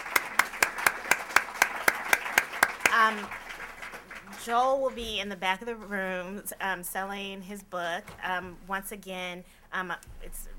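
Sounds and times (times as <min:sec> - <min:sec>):
applause: 0:00.0 - 0:05.0
speech: 0:03.0 - 0:03.4, 0:04.3 - 0:10.5.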